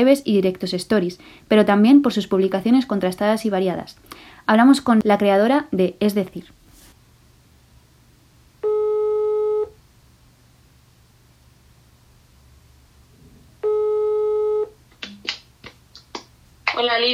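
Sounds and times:
speech: 0.0 - 6.6
telephone ringback tone while calling: 8.6 - 9.8, 13.6 - 14.8.

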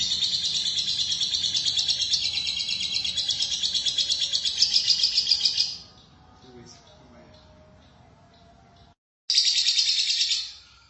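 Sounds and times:
lovebird song of high scratchy chirps and twitters: 0.0 - 10.8.

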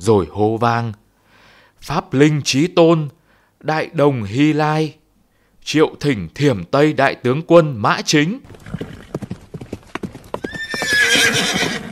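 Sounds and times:
speech: 0.0 - 1.0, 1.8 - 5.0, 5.6 - 8.9
horse hooves clip-clopping: 8.4 - 11.8
horse whinnying: 8.5 - 9.4, 10.2 - 11.8.

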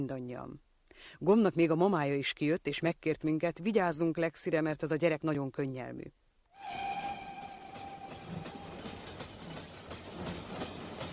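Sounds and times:
speech: 0.0 - 6.9
high sustained whistle-like tone: 6.5 - 9.7
train rushing out of a railway station rumbling and rattling: 6.6 - 11.1.

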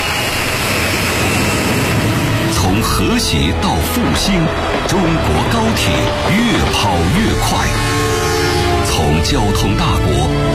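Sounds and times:
large domestic-built passenger jet engines roaring during takeoff: 0.0 - 10.5
speech: 3.0 - 8.1, 8.9 - 10.5.

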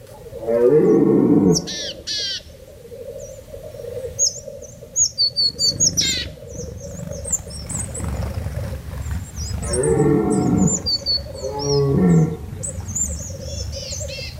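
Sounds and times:
red deer stags bellowing from the mountains: 0.2 - 2.0, 7.1 - 12.6
bird chirps and twitters: 4.2 - 14.3.

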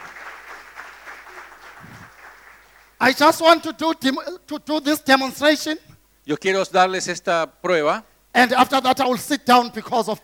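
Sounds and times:
audience in church clapping for a young girl: 0.0 - 3.0
speech: 3.0 - 10.2.

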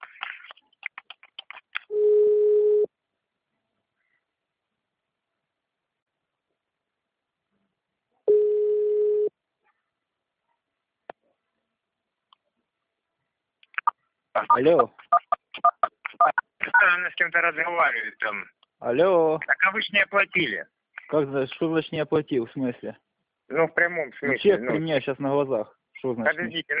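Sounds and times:
telephone ringback tone while calling someone: 1.9 - 2.9, 8.3 - 9.3
speech: 14.6 - 15.0, 15.6 - 26.7.

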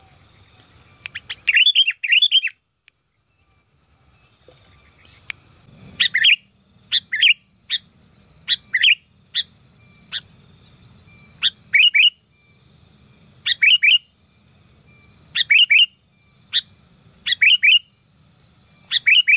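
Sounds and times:
Sooty-headed bulbul chirps and bubbly phrases: 1.0 - 2.6, 4.3 - 14.2, 15.0 - 19.3.

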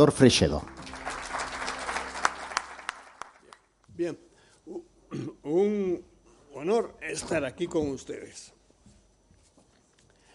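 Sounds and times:
speech: 0.0 - 0.8, 4.0 - 8.6
audience applause at a talk: 0.6 - 3.7.

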